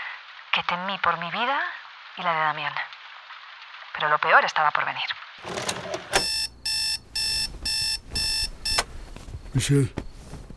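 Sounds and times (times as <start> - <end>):
speech: 0.6 - 2.9, 4.0 - 5.8, 9.6 - 10.0
alarm clock ringing with bright harmonic beeping: 5.5 - 8.9.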